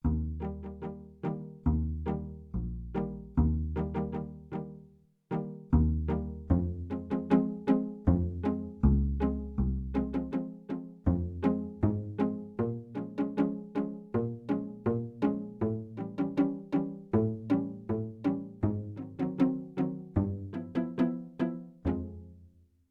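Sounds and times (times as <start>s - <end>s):
stereo dual pizzicato strings on a sampler: 0.0s - 22.4s.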